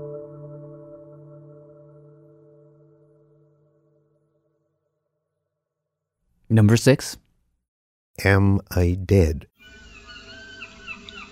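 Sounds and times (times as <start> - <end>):
speech: 6.5 - 7.2, 8.2 - 9.8
seagulls calling at the edge of the English Channel and the Atlantic: 9.6 - 11.3.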